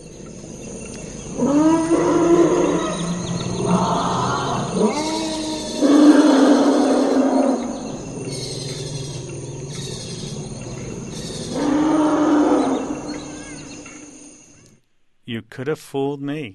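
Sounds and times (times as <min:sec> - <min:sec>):
elephants trumpeting and bellowing: 0:01.3 - 0:13.8
speech: 0:15.6 - 0:16.5.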